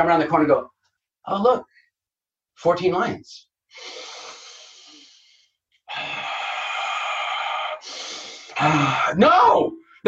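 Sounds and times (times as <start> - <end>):
speech: 0.0 - 1.8, 2.6 - 4.1, 8.6 - 10.0
person breathing deeply and slowly into the microphone: 3.7 - 9.1.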